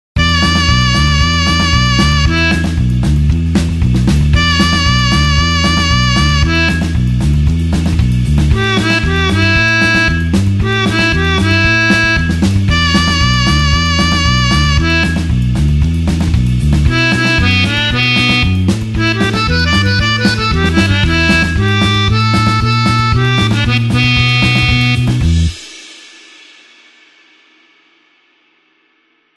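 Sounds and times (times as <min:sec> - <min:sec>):
blues harmonica in E: 0:00.2 - 0:25.7.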